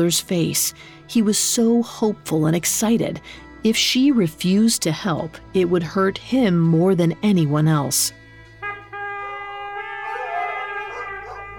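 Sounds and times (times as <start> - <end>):
speech: 0.0 - 8.2
pack of hunting hounds howling and baying: 9.8 - 11.5.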